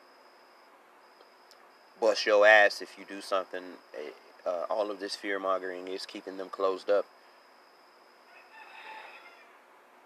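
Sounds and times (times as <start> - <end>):
steady hiss: 0.0 - 10.0
speech: 2.0 - 7.2
rooster crowing: 8.2 - 9.8.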